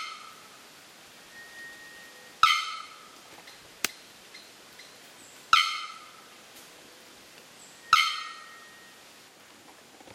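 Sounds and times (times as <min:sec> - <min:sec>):
bearded bellbird: 0:01.3 - 0:02.9, 0:07.8 - 0:09.0.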